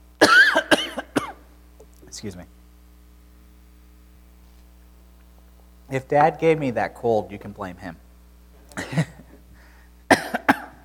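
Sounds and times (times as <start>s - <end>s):
person coughing: 0.2s - 1.4s, 8.8s - 9.4s, 10.1s - 10.8s
speech: 2.2s - 2.6s, 5.9s - 8.0s.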